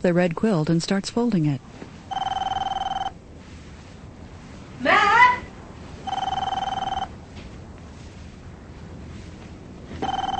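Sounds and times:
speech: 0.0 - 2.3
telephone ringing inside a house: 2.1 - 3.2, 6.0 - 7.2, 10.0 - 10.3.

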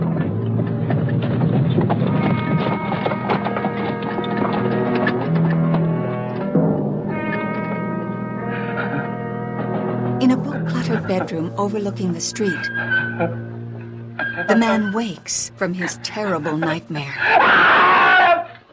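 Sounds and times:
horse hooves clip-clopping along a street: 0.0 - 6.5
sustained music-like notes: 0.0 - 17.2
speech: 11.1 - 13.5, 14.4 - 17.8.

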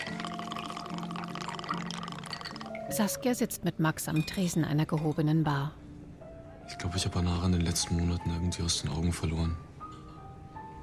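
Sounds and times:
cocktail poured over a round ice cube in a glass: 0.0 - 3.0
speech: 2.9 - 5.8, 6.7 - 9.7.

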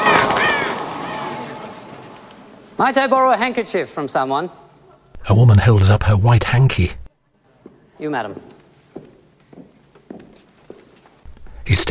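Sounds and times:
crows cawing in a theatre during a magic act: 0.0 - 1.8
speech: 2.8 - 4.6, 5.2 - 7.0, 8.0 - 8.5, 11.7 - 11.8.

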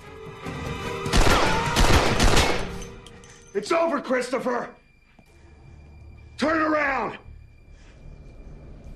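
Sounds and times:
gunfire from a warning salvo in a storeroom: 1.1 - 2.8
speech: 3.6 - 4.8, 6.4 - 7.2.

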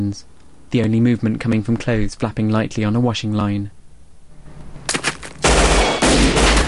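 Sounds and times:
speech: 0.0 - 3.8
gunfire exchanged in a shootout: 4.9 - 6.6.

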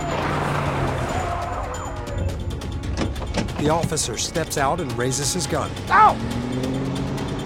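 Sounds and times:
car tires squealing and screeching through a skid: 0.0 - 2.4
car engine roaring: 0.0 - 7.4
continuous road noise: 0.0 - 7.4
speech: 3.6 - 6.6.

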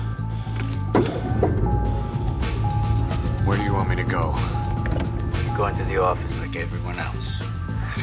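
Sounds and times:
keys being picked up from a car seat: 0.2 - 1.7
steady low engine hum inside a car: 0.8 - 8.0
speech: 5.6 - 8.0.

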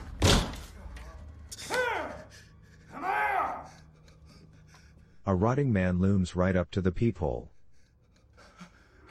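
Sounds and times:
bodies slamming against a door: 0.1 - 0.7
speech: 5.3 - 7.5.

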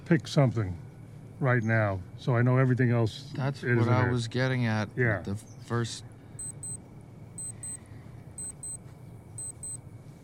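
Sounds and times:
speech: 0.1 - 0.8, 1.4 - 6.1
small digital watch timer beeping as it is stopped: 6.4 - 6.8, 7.4 - 7.8, 8.4 - 8.8, 9.4 - 9.8.

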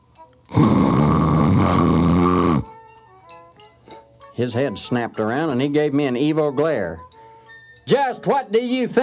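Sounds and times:
person voicing a loud rasping snore: 0.5 - 2.7
speech: 4.4 - 7.1, 7.9 - 9.0.

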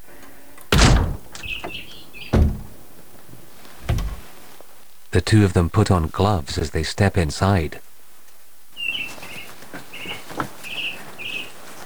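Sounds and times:
splintered back door hinges creaking: 0.0 - 4.3
splintered kicked-in back door thuds: 0.6 - 4.4
speech: 5.2 - 7.8.

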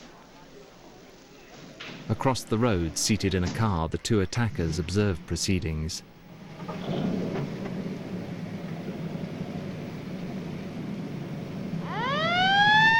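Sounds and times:
speech: 2.2 - 6.1
low rumble of ambulance pulling away: 6.3 - 12.9
ambulance siren wailing as the vehicle pulls away: 11.8 - 12.9.

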